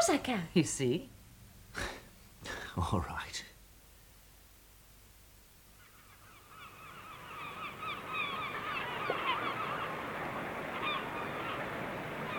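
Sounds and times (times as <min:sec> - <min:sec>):
speech: 0:00.0 - 0:01.2, 0:01.8 - 0:03.4
large flock of geese honking: 0:05.8 - 0:12.3.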